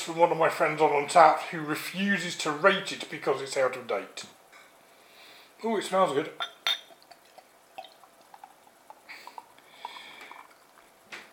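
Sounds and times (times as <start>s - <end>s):
speech: 0.1s - 4.4s, 5.6s - 6.5s
golden beer being poured from a bottle into a glass: 6.4s - 11.3s.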